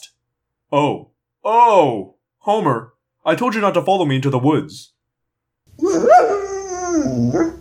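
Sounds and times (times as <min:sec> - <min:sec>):
speech: 0:00.7 - 0:04.9, 0:05.8 - 0:07.6
dog whining pitifully after being sprayed: 0:05.8 - 0:07.6.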